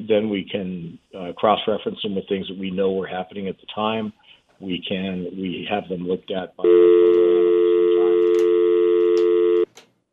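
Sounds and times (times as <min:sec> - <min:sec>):
speech: 0:00.1 - 0:07.3
telephone dial tone: 0:06.7 - 0:09.7.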